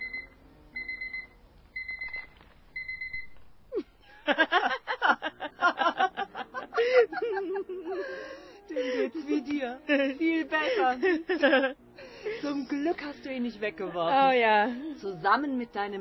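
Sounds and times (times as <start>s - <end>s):
alarm clock beeping: 0.0s - 3.4s
person laughing: 3.7s - 10.1s
speech: 9.8s - 11.8s, 12.5s - 15.9s.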